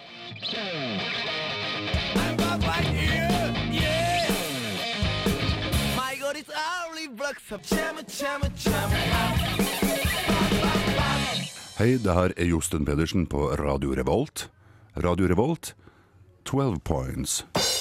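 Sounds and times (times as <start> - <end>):
loud energetic Japanese rock song with distorted electric guitars and drums: 0.0 - 6.1, 7.7 - 11.8
speech: 7.3 - 10.3, 11.8 - 15.8, 16.5 - 17.7.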